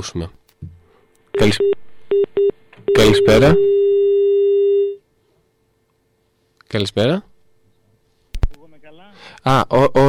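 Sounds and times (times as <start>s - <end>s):
speech: 0.0s - 0.7s, 1.4s - 3.9s, 6.7s - 7.3s, 9.4s - 10.0s
electronic phone-line beeps and steady tone of incoming call: 1.4s - 5.0s.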